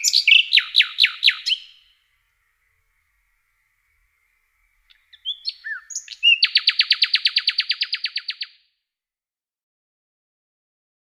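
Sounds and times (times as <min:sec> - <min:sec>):
common nightingale singing: 0:00.0 - 0:08.7.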